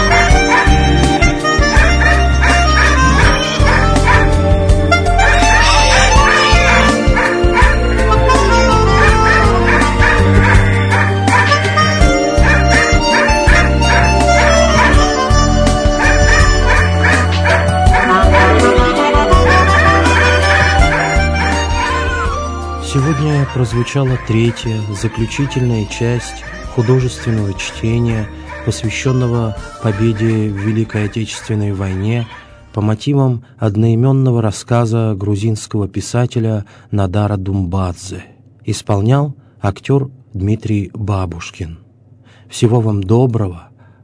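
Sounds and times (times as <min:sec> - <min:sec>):
dog whimpering: 0:00.2 - 0:04.4, 0:05.2 - 0:22.5
dog barking in a yard: 0:00.4 - 0:00.9, 0:01.7 - 0:04.4, 0:05.2 - 0:07.8, 0:08.9 - 0:15.3, 0:15.9 - 0:22.0
speech: 0:23.6 - 0:41.8, 0:42.5 - 0:43.7.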